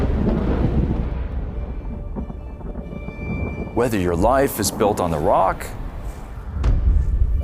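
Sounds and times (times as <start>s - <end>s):
thunder rumbling in a storm: 0.0s - 7.4s
speech: 3.8s - 5.8s.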